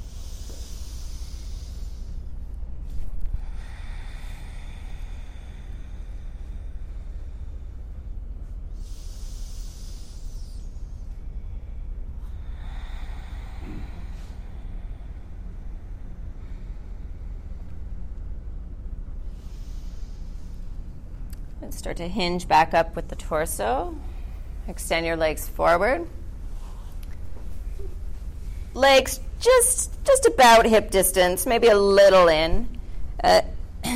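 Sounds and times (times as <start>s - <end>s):
yoga breathing while exhaling and folding forward: 0.0s - 21.3s, 26.1s - 29.6s
low hum: 0.0s - 33.9s
speech: 21.6s - 24.1s, 24.7s - 26.2s, 28.8s - 33.9s.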